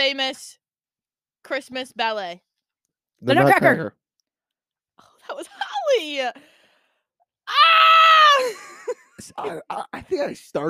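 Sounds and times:
speech: 0:00.0 - 0:00.6, 0:01.4 - 0:02.5, 0:03.2 - 0:04.0, 0:05.3 - 0:06.5, 0:07.5 - 0:10.6
person screaming loudly into microphone: 0:07.5 - 0:08.5.

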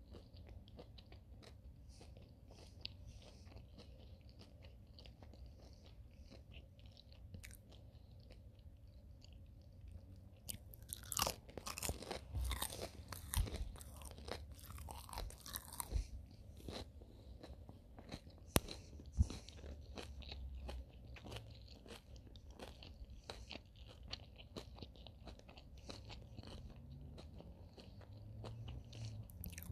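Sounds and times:
person chewing fish sticks: 0:00.0 - 0:29.7
loud crunchy biting of fish sticks: 0:10.5 - 0:29.7.

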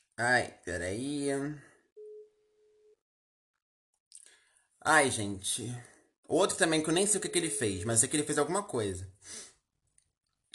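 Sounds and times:
speech: 0:00.2 - 0:01.7, 0:04.8 - 0:09.5
telephone ringback tone during an outgoing call: 0:02.0 - 0:03.0.

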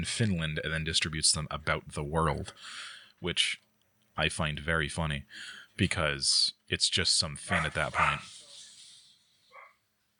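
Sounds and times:
speech: 0:00.0 - 0:03.6, 0:04.2 - 0:08.4
steady hiss: 0:00.0 - 0:10.1
single short faint dog bark: 0:07.5 - 0:08.3, 0:09.5 - 0:09.8.

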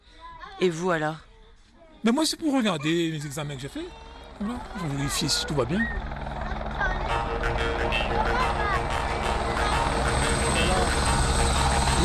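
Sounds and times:
people's voices: 0:00.0 - 0:12.0
speech: 0:00.6 - 0:01.3, 0:02.0 - 0:06.1, 0:07.4 - 0:09.0
helicopter rotor chopping: 0:03.3 - 0:12.0.

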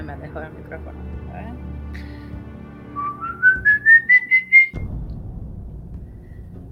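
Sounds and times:
speech: 0:00.2 - 0:02.1
person whistling an eerie tune imitating a ghost's whistle: 0:03.0 - 0:04.8
low rumble: 0:04.8 - 0:06.7.

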